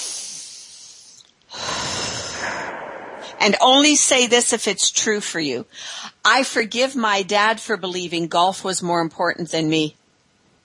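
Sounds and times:
slow deep breath during a guided forgiveness exercise: 0.0s - 3.6s
speech: 3.4s - 10.0s.

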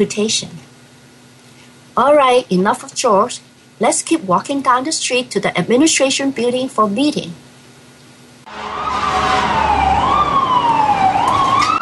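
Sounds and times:
speech: 0.0s - 0.6s, 2.0s - 7.5s
ambulance siren wailing: 8.5s - 11.8s
street traffic rumble: 8.5s - 11.8s.

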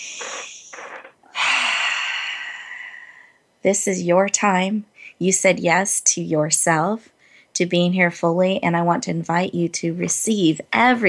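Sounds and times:
deep centering breath: 1.3s - 3.4s, 7.1s - 7.5s
speech: 3.6s - 11.0s.

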